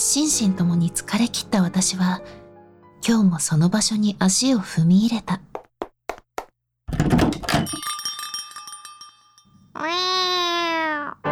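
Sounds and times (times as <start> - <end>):
speech: 0.1 - 2.4, 3.1 - 5.6
bright ringing door bell chime: 7.5 - 9.6
cat meowing in a cat café: 9.8 - 11.2.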